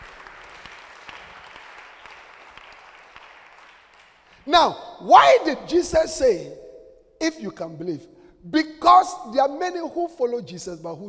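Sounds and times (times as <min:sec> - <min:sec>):
congregation clapping hands at a church service: 0:00.0 - 0:05.6
speech: 0:04.4 - 0:06.6, 0:07.2 - 0:11.0.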